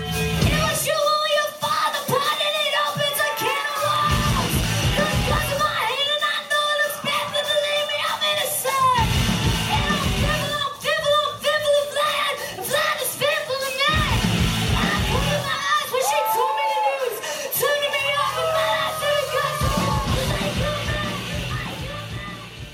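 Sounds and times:
distorted guitars: 0.0s - 0.9s, 1.6s - 11.4s, 12.5s - 22.7s
loud raw punk rock cover song: 0.0s - 22.7s
singer yelling and straining: 0.0s - 22.7s
pounding drums: 0.4s - 6.2s, 13.9s - 22.7s.

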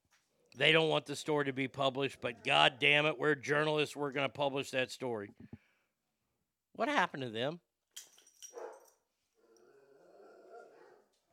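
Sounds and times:
speech: 0.6s - 5.6s, 6.8s - 8.6s
dogs barking: 8.5s - 8.9s, 10.1s - 11.3s.

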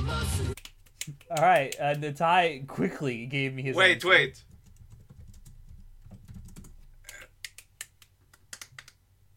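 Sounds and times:
speech: 0.2s - 4.5s
slow typing on a computer keyboard: 4.5s - 6.8s.

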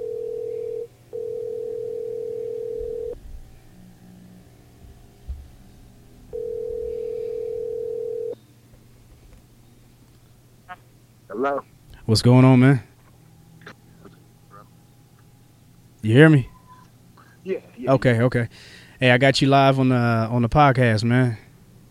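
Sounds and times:
telephone dial tone on a call being placed: 0.0s - 3.2s, 6.3s - 8.4s
faint low hum: 0.0s - 21.9s
speech: 11.4s - 12.9s, 16.0s - 16.5s, 17.9s - 21.4s.

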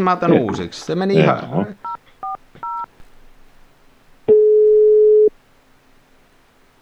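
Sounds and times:
speech: 0.0s - 1.9s
laughter: 0.0s - 3.0s
touch-tone keypad beeps: 1.8s - 2.9s, 4.3s - 5.3s.

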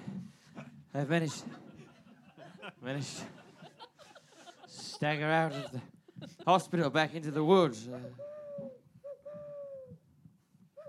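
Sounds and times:
laughter: 0.6s - 8.2s
speech: 1.0s - 1.6s, 2.8s - 3.4s, 5.0s - 8.3s
owl hooting: 8.2s - 10.0s.

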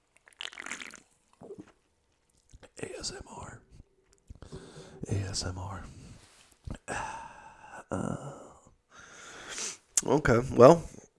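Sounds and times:
sipping ice cold sparkling water: 0.1s - 1.8s
swallowing: 0.2s - 1.8s
speech: 3.0s - 3.7s, 5.1s - 6.0s, 7.9s - 8.4s, 10.0s - 11.0s
soft breathy exhale: 4.4s - 5.1s, 6.9s - 7.9s, 8.9s - 9.8s.

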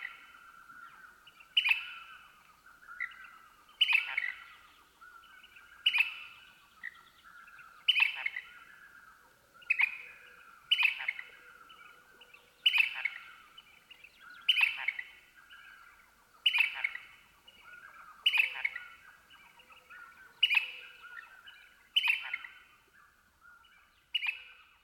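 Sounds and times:
house finch singing warbled phrases at twilight: 0.0s - 8.9s, 9.6s - 24.8s.

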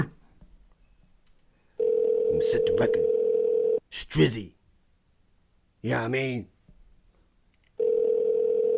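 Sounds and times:
electronic telephone ringback tone heard through a handset: 1.8s - 3.8s, 7.8s - 8.7s
speech: 2.4s - 3.2s, 3.9s - 4.6s, 5.8s - 6.5s.

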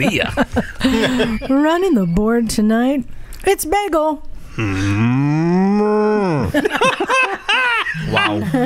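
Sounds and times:
laughter: 0.0s - 1.6s, 6.5s - 8.6s
speech: 0.0s - 8.6s
cow mooing: 4.6s - 6.5s.

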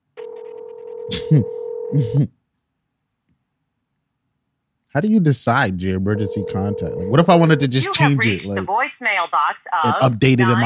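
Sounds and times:
steady electronic ringback tone of a phone line: 0.2s - 2.2s, 6.2s - 8.6s
speech: 1.1s - 2.4s, 4.9s - 10.6s.

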